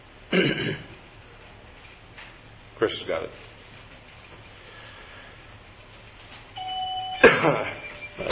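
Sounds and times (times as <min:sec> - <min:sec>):
speech: 0:02.8 - 0:03.6, 0:07.4 - 0:07.7
bell ringing: 0:06.6 - 0:08.2.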